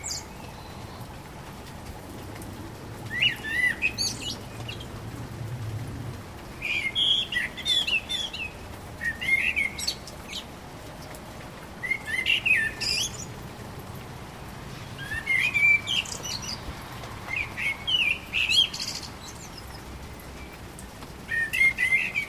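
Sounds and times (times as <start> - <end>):
common blackbird singing varied fluted song phrases: 3.1 - 4.8, 6.6 - 10.5, 11.8 - 13.3, 15.0 - 16.6, 17.3 - 19.6, 21.3 - 22.2.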